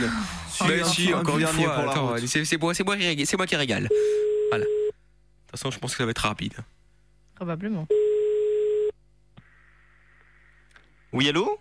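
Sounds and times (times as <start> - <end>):
speech: 0.0 - 4.8, 5.6 - 6.8, 7.4 - 8.0, 11.1 - 11.5
telephone line tone while calling someone back: 3.9 - 4.9, 7.9 - 9.0.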